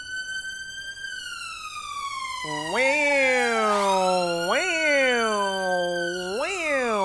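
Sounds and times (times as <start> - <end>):
ambulance siren passing by a window: 2.3 - 7.0
speech: 2.4 - 3.1.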